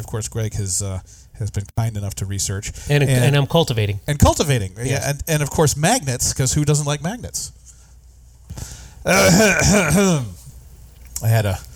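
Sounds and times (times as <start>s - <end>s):
speech: 0.0s - 7.6s, 8.6s - 10.4s, 11.2s - 11.7s
person gagging: 9.1s - 10.3s
person hacking cough: 9.1s - 10.4s.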